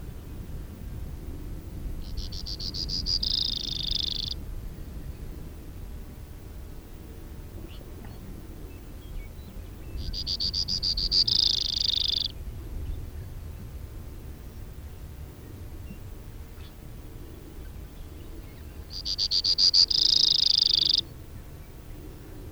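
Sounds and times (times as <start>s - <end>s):
steady background noise from a cassette recording: 0.0s - 22.4s
Brewer's sparrow song of high ticking notes into a buzzy trill: 2.0s - 5.3s, 7.5s - 13.2s, 14.4s - 22.4s.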